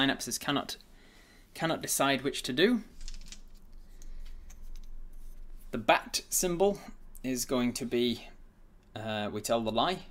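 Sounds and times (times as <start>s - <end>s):
speech: 0.0s - 0.9s, 1.5s - 2.9s, 5.7s - 8.3s, 9.0s - 10.0s
coin from a dice set being tossed: 3.0s - 3.6s.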